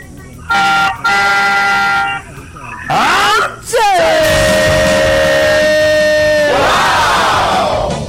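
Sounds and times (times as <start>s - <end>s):
faint noise: 0.0s - 7.9s
car horn honking: 0.5s - 2.3s.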